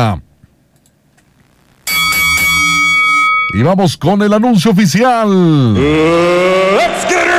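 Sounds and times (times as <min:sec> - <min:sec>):
speech: 0:00.0 - 0:00.3, 0:03.5 - 0:07.2
loud bell struck with metallic tones: 0:01.9 - 0:03.7.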